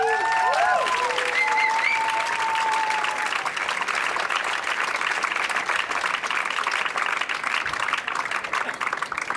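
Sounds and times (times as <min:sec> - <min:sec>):
faint whoops and cheers: 0:00.0 - 0:03.5
sustained applause from a large audience: 0:00.0 - 0:09.3.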